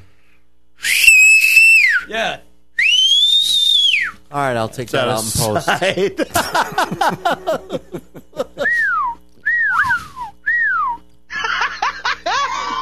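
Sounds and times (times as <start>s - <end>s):
loud human mouth whistles in sharp falling glides: 0.8s - 2.1s, 2.8s - 4.2s, 8.6s - 11.0s
speech: 2.1s - 2.5s, 4.3s - 8.3s
person laughing: 5.3s - 9.1s, 9.7s - 10.3s, 11.3s - 12.8s.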